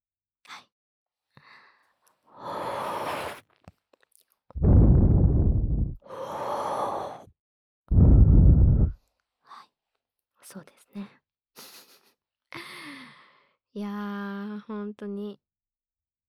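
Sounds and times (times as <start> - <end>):
speech: 0.5 - 0.7, 14.8 - 15.5
smoking inhales and exhales: 2.4 - 3.4, 4.6 - 7.3, 7.9 - 9.0.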